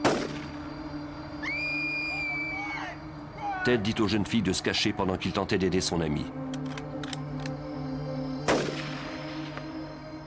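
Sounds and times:
single sharp gunshot: 0.0 - 0.6, 8.5 - 9.2
steady sustained tonal background: 0.0 - 10.2
speech: 3.6 - 6.5.

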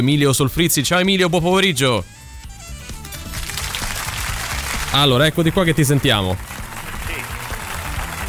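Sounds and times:
speech: 0.0 - 2.2, 5.0 - 6.5
dense applause from a theater audience: 3.2 - 8.2.

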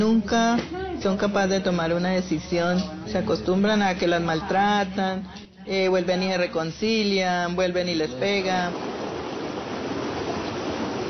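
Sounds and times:
speech: 0.0 - 8.9
flowing river water rushing: 8.6 - 11.0.

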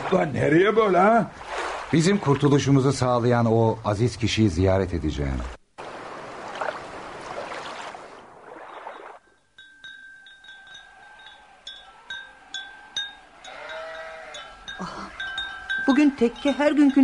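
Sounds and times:
speech: 0.1 - 5.6, 16.2 - 17.0
sheep bleating: 11.0 - 15.7.

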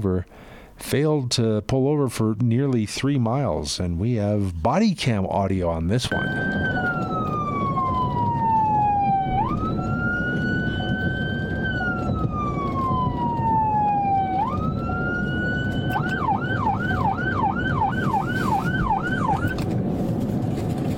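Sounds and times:
speech: 0.0 - 7.1
steady rumble of road and engine noise: 2.7 - 20.9
police car siren wailing and yelping during a pursuit: 6.1 - 19.7.

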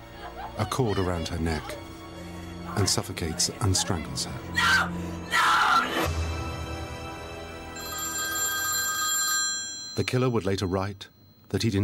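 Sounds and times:
laughter: 0.0 - 1.8
speech: 0.6 - 1.9, 2.7 - 6.3, 10.0 - 11.8
telephone bell ringing: 7.8 - 11.5.

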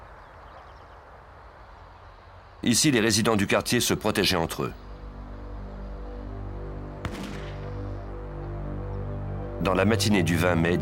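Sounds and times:
speech: 2.6 - 4.8, 9.6 - 10.8
steady tonal drone: 4.2 - 10.8
gunshot from a house on a residential street: 7.0 - 7.8.

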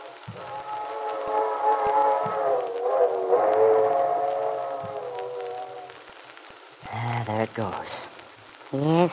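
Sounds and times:
old train whistle blowing in the distance: 0.0 - 6.2
faint low rumble: 0.0 - 9.1
speech: 7.5 - 8.1, 8.7 - 9.1.

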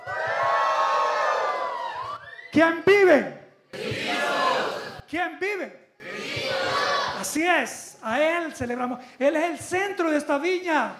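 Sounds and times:
whoops: 0.0 - 2.5
worshipping crowd shouting and cheering joyfully: 0.0 - 2.8, 3.6 - 5.1, 6.0 - 7.8
speech: 2.6 - 4.0, 5.1 - 10.9.

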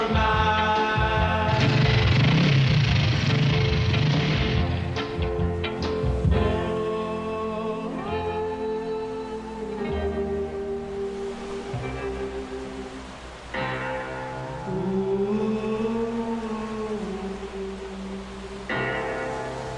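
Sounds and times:
steady hiss of noise: 0.0 - 19.7
heavy piano chords banged out: 1.2 - 6.8.

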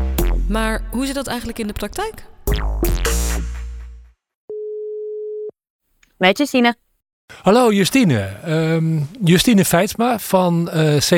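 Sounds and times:
speech: 0.5 - 3.0, 6.2 - 11.1
telephone call ringing tone: 4.5 - 5.5.

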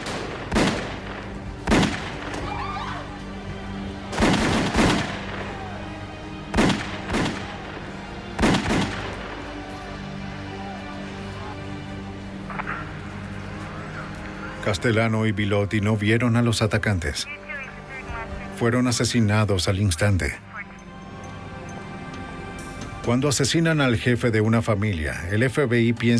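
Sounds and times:
gunfire sound effect: 0.0 - 2.5, 4.1 - 5.7, 6.5 - 7.6, 8.3 - 9.5
speech: 14.7 - 17.4, 18.6 - 20.5, 23.1 - 26.1.

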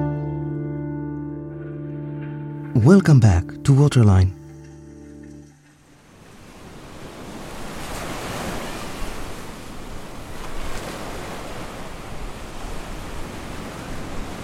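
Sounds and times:
speech: 2.8 - 4.4
Mediterranean sea waves washing onto a beach: 5.3 - 14.4.

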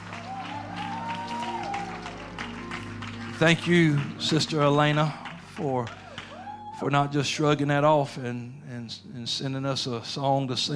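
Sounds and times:
audience clapping: 0.0 - 7.1
speech: 3.4 - 6.0, 6.8 - 10.7.

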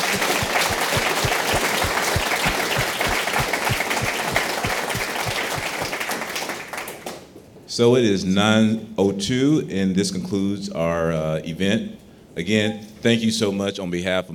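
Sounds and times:
audience applause for panelists: 0.0 - 7.1
speech: 7.8 - 14.3.

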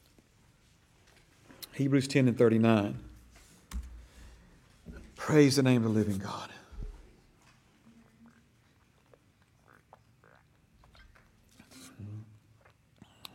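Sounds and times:
speech: 1.8 - 3.1, 5.3 - 6.6
person sipping and swallowing water: 7.8 - 13.3
gulps: 7.9 - 12.7.

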